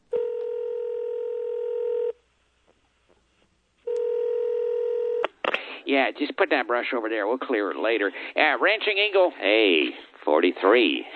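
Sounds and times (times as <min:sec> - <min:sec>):
steady electronic telephone tone while a call is placed: 0:00.1 - 0:02.2, 0:03.9 - 0:05.4
speech: 0:05.9 - 0:11.1.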